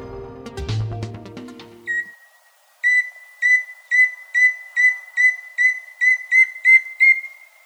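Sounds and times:
chusquero bird singing clear whistled notes: 0:01.9 - 0:07.6.

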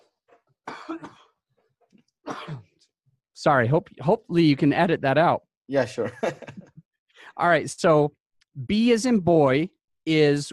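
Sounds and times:
loud coughs: 0:00.6 - 0:01.4, 0:02.2 - 0:02.9
speech: 0:03.4 - 0:06.6, 0:07.4 - 0:10.5
laughter: 0:06.0 - 0:06.9.

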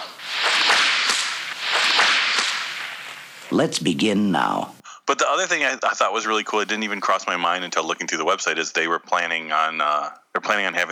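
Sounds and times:
rushing swish of a bullwhip lash: 0:00.0 - 0:03.2
bullwhip cracks: 0:00.0 - 0:03.4
speech: 0:03.5 - 0:10.9.

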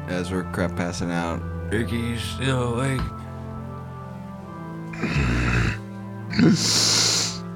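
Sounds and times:
speech: 0:00.1 - 0:03.2, 0:06.4 - 0:06.9
snoring: 0:04.9 - 0:07.4.

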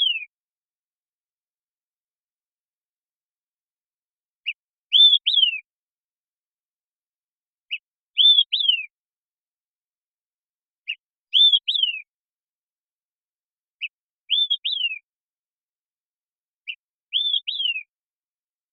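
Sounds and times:
olive-sided flycatcher singing, Contopus cooperi: 0:00.0 - 0:00.4, 0:04.4 - 0:05.7, 0:07.6 - 0:09.0, 0:10.8 - 0:12.2, 0:13.8 - 0:15.2, 0:16.6 - 0:18.0.

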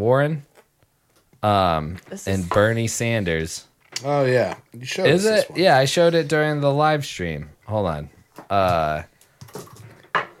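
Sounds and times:
speech: 0:00.0 - 0:00.5, 0:01.4 - 0:09.7
plastic pens thrown and clattering: 0:09.4 - 0:10.3.

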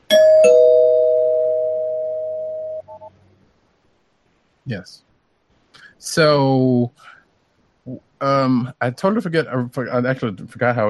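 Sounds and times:
two-note ding-dong doorbell chime rung as a spoiler bell: 0:00.1 - 0:02.9
faint blips: 0:02.0 - 0:03.2
speech: 0:04.7 - 0:05.1, 0:06.0 - 0:07.2, 0:07.9 - 0:10.8.

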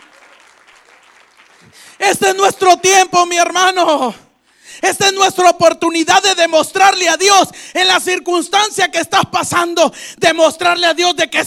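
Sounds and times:
audience applauding: 0:00.0 - 0:02.0
speech: 0:01.6 - 0:04.2, 0:04.8 - 0:11.4.

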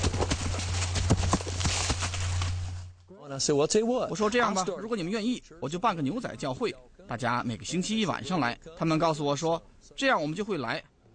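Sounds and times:
horse hooves clip-clopping in the woods: 0:00.0 - 0:02.9
steady low hum: 0:00.0 - 0:03.1
speech: 0:03.3 - 0:10.9.

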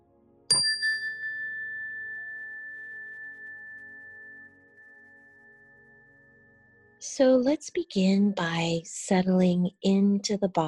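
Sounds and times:
meditation chime ringing: 0:00.5 - 0:06.8
speech: 0:07.0 - 0:10.6.

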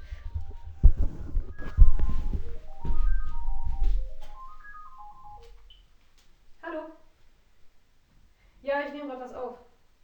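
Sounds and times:
mobile phone ringtone melody of stepped electronic notes with thumping bass: 0:00.0 - 0:05.5.

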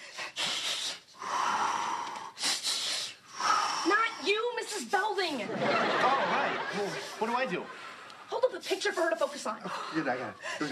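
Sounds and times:
person panting through a breathing exercise: 0:00.0 - 0:04.2
speech: 0:04.9 - 0:07.8, 0:08.6 - 0:10.6
laughter: 0:05.4 - 0:08.1.

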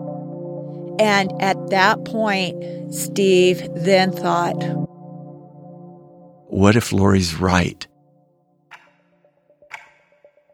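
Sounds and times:
speech: 0:01.0 - 0:04.9, 0:06.5 - 0:07.9
clock ticking: 0:08.7 - 0:09.0, 0:09.7 - 0:10.5.

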